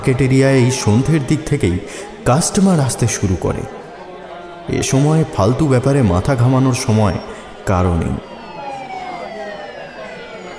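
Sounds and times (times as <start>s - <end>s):
speech: 0.0s - 3.8s, 4.7s - 8.3s
police car siren in a market area in the evening: 7.7s - 10.5s.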